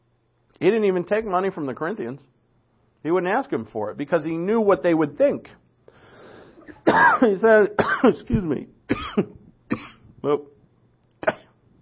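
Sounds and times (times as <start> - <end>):
faint room noise: 0.0 - 11.8
speech: 0.6 - 2.4, 3.0 - 5.6, 6.8 - 10.5
person coughing harshly: 6.6 - 8.3, 8.9 - 10.5, 11.2 - 11.6.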